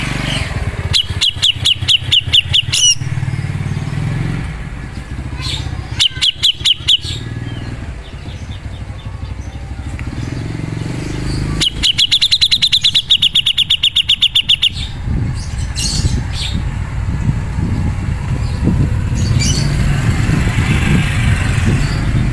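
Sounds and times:
rumbling background noise: 0.0s - 13.1s, 14.7s - 22.3s
Grey-cheeked bulbul call: 0.2s - 3.4s, 5.2s - 9.5s, 10.4s - 16.6s.

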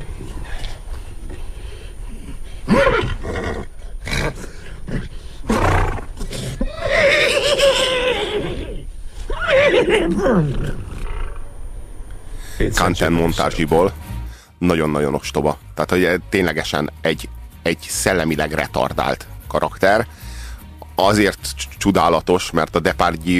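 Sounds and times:
human voice imitating a horse neighing as when wanting to walk: 2.7s - 4.6s, 5.5s - 11.3s
speech: 10.1s - 10.8s, 12.7s - 14.0s, 14.6s - 20.2s, 21.0s - 23.3s.

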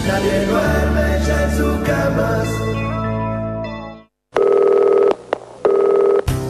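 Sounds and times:
speech: 0.2s - 3.0s
telephone dialing tones: 4.4s - 6.3s.

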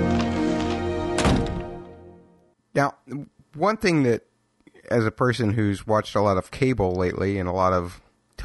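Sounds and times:
door shutting: 0.1s - 1.9s
speech: 2.8s - 4.3s, 4.9s - 8.4s.

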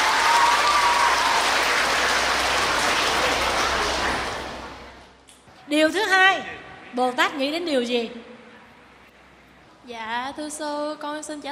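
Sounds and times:
audience applause at a Buddhist teaching session: 0.0s - 5.0s
speech: 7.0s - 8.3s, 9.9s - 11.4s.

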